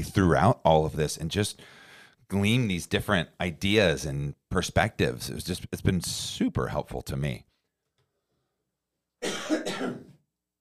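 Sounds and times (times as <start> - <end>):
speech: 0.0 - 7.5, 9.5 - 10.1
short raspy cough: 9.2 - 10.2.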